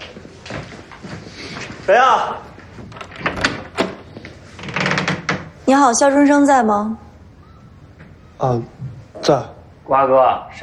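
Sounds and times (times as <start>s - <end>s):
shuffling in a room: 0.0s - 4.6s
speech: 1.9s - 2.5s, 5.7s - 7.0s, 8.4s - 10.6s
door pulled open with a squeaky hinge creak: 2.9s - 5.6s.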